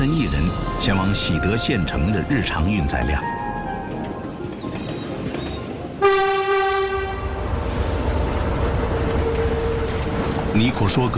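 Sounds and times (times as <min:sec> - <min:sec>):
train pulling in to a station rumbling: 0:00.0 - 0:11.1
speech: 0:00.8 - 0:03.4, 0:10.6 - 0:11.1
loud sustained horn-like squeal of an arriving train: 0:07.7 - 0:10.7.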